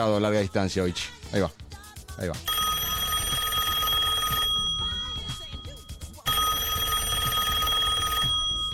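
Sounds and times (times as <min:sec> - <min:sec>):
speech: 0:00.0 - 0:01.6, 0:02.2 - 0:02.5
telephone ringing with a bright buzzing electronic bell: 0:02.5 - 0:08.7.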